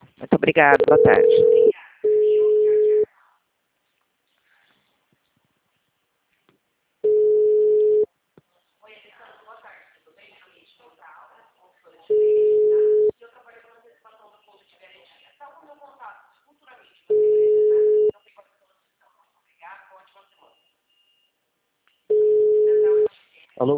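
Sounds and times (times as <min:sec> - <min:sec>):
speech: 0:00.2 - 0:01.7
telephone busy tone beeps after a dropped call: 0:00.7 - 0:03.1, 0:07.0 - 0:08.1, 0:12.1 - 0:13.1, 0:17.1 - 0:18.1, 0:22.1 - 0:23.1.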